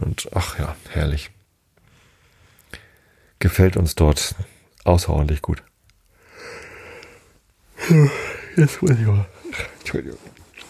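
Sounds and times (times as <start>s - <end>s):
speech: 0.2s - 1.4s, 3.4s - 5.7s, 7.9s - 10.4s
person yawning: 7.8s - 8.6s.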